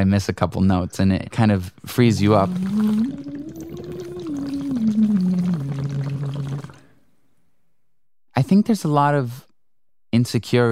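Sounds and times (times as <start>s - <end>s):
speech: 0.0s - 3.4s, 8.5s - 9.5s, 10.1s - 10.6s
water bubbling and gurgling: 2.0s - 6.9s
person singing underwater: 2.2s - 6.9s.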